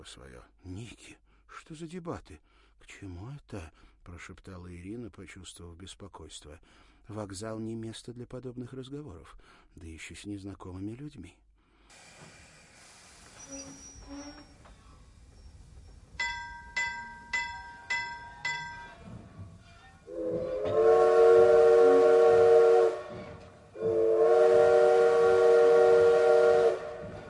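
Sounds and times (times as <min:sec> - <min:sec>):
speech: 0:00.0 - 0:12.0, 0:13.5 - 0:14.5
steam locomotive whistle blasts: 0:13.4 - 0:14.7, 0:19.7 - 0:27.2
railway station bell ringing: 0:16.2 - 0:20.0.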